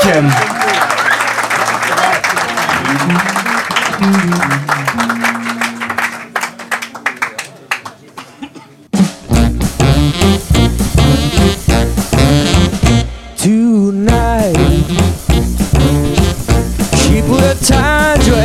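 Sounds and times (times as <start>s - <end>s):
audience cheering: 0.0s - 7.3s
audience applauding a band taking the stage: 0.0s - 8.3s
music: 2.5s - 7.1s, 8.9s - 18.4s
sustained musical tone: 2.5s - 7.2s.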